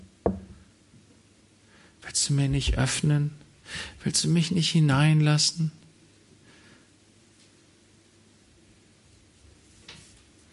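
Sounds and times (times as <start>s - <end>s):
heavy knock on a door: 0.2s - 0.6s
speech: 2.0s - 5.8s.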